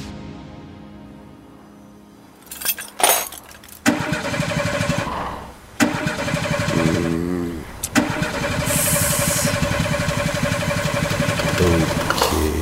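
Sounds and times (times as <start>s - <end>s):
car engine cranking and failing to start, out of oil: 2.5s - 5.2s, 5.8s - 7.2s, 7.8s - 12.4s.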